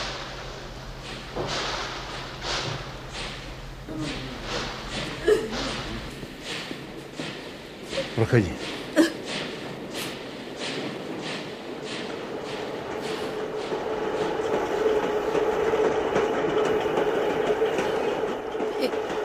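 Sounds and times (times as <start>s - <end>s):
train passing with a low rumbling drone: 0.0s - 19.2s
train wheels clattering over rail joints: 0.0s - 19.2s
speech: 8.2s - 8.7s.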